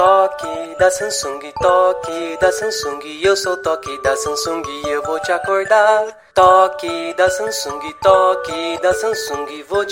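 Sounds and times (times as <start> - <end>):
Samsung phone ringtone: 0.1 - 9.9.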